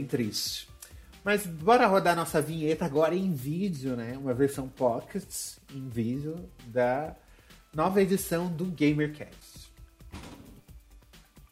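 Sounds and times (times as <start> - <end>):
speech: 0.0 - 9.6
door slammed shut by the wind: 10.1 - 10.6.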